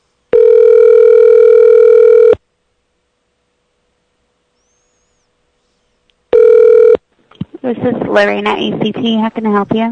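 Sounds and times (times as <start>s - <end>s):
outgoing Skype call electronic ringing tone: 0.3s - 2.4s, 6.3s - 7.0s
speech: 7.9s - 9.8s.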